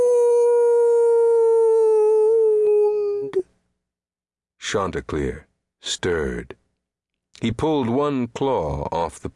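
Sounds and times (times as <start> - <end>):
mournful dog howl: 0.0 - 3.4
speech: 4.7 - 6.6, 7.4 - 9.3.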